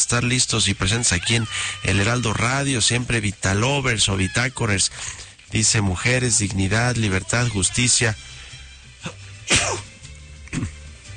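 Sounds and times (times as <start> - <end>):
speech: 0.0 - 9.8
loud sneeze: 9.0 - 9.9.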